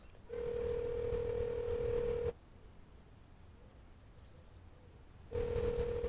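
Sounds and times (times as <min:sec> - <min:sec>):
ringback tone of an unanswered outgoing telephone call: 0:00.3 - 0:02.3, 0:05.3 - 0:06.0.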